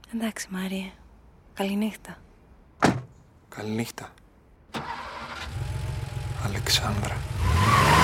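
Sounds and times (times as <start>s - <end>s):
speech: 0.1s - 1.0s, 1.6s - 2.2s, 3.5s - 5.0s, 6.4s - 7.9s
motorcycle engine starting and pulling away: 4.8s - 7.4s.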